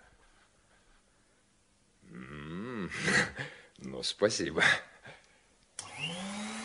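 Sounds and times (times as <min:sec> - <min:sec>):
speech: 0:02.9 - 0:04.9
vacuum cleaner switching on with a click: 0:05.8 - 0:06.1
vacuum cleaner motor whining up and roaring: 0:05.8 - 0:06.6.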